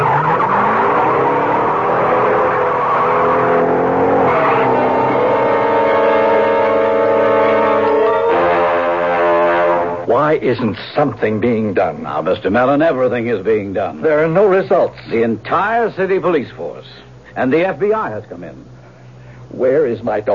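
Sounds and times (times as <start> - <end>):
car engine revving while driving off at speed: 0.0 - 10.1
car tires squealing: 0.0 - 10.1
speech: 10.3 - 18.7, 19.5 - 20.3.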